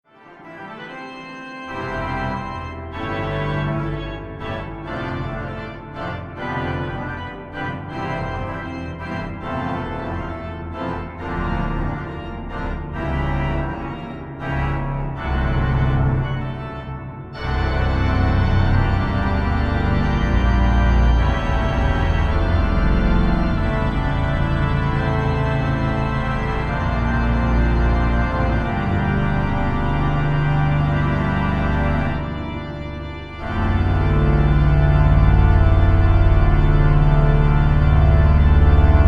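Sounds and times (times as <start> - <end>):
organ fugue: 0.1 - 39.0.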